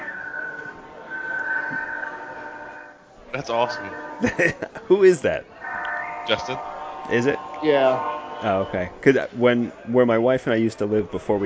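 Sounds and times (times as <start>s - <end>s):
high-pitched squeal or horn-like tone: 0.0s - 4.4s, 5.6s - 9.6s
train passing: 0.0s - 4.4s, 5.6s - 9.6s
speech: 3.4s - 5.5s, 6.2s - 11.4s
laughter: 4.2s - 5.0s.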